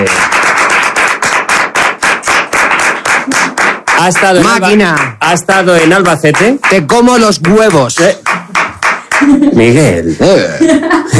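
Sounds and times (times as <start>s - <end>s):
small group clapping: 0.0s - 9.8s
speech: 4.0s - 8.2s, 9.2s - 11.1s.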